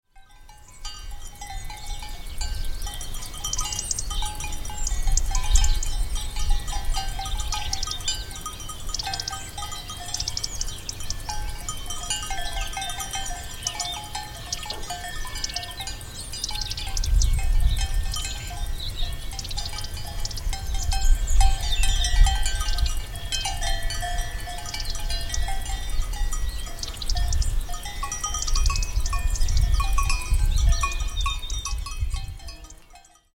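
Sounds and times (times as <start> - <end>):
cowbells ringing: 0.1 - 33.3.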